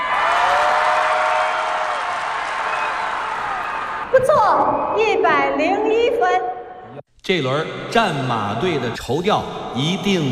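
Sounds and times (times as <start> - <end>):
audience clapping at a stage competition: 0.0 - 4.1
speech: 4.3 - 6.6, 7.3 - 10.3.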